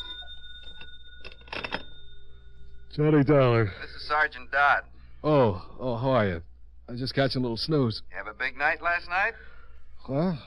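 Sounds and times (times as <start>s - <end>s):
telephone bell ringing in a hotel: 0.0s - 2.9s
faint steady hum: 0.0s - 10.4s
speech: 3.0s - 9.5s, 10.1s - 10.4s.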